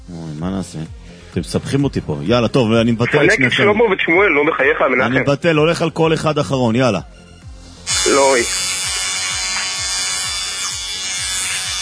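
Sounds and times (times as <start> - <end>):
speech: 0.4 - 7.3, 8.1 - 8.7
electric hair clipper buzzing: 7.9 - 11.8.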